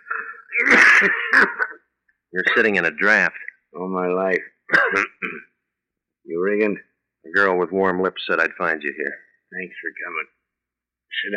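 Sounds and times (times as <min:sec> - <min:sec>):
thin man coughing: 0:00.0 - 0:01.8, 0:02.4 - 0:02.8, 0:04.7 - 0:05.6
speech: 0:00.6 - 0:01.6, 0:02.3 - 0:05.5, 0:06.3 - 0:10.4, 0:11.1 - 0:11.3.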